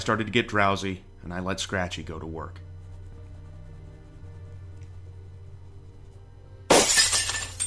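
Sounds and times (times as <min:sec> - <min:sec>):
speech: 0:00.0 - 0:02.7
low hum: 0:00.0 - 0:07.6
glass shards tinkling and scattering: 0:06.7 - 0:07.6
glass shattering: 0:06.7 - 0:07.6.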